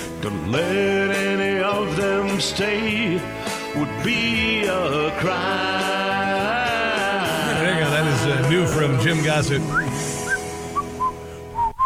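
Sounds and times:
speech: 0.2s - 6.7s, 8.0s - 10.1s
whistled melody from a song: 9.6s - 11.8s.

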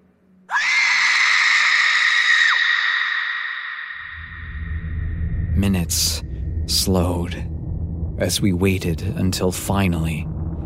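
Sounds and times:
shrill scream: 0.5s - 4.7s
low rumbling noise: 4.0s - 10.6s
speech: 5.6s - 7.5s, 8.2s - 10.4s.

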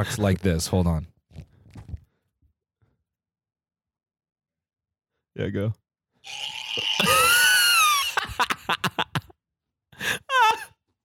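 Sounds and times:
speech: 0.0s - 1.1s, 5.4s - 7.3s
person screaming: 6.2s - 8.5s, 10.3s - 10.7s
laughter: 7.0s - 9.3s
person gasping: 10.0s - 10.6s.

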